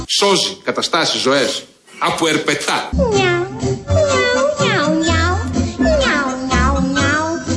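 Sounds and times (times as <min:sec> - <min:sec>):
speech: 0:00.2 - 0:03.3
cat meowing in loud drawn-out calls: 0:02.9 - 0:07.4.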